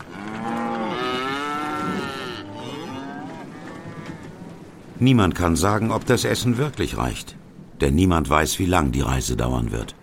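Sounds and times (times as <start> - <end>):
cows mooing in long drawn-out bellows aboard a ship: 0.0 - 4.7
speech: 5.0 - 10.0.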